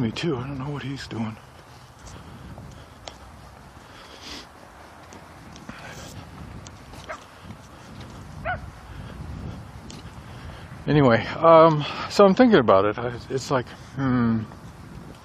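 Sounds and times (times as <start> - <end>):
speech: 0.0 - 2.2, 10.9 - 14.6
steady low outdoor rumble: 0.0 - 15.2
loose dog barking on a walk: 8.4 - 8.7.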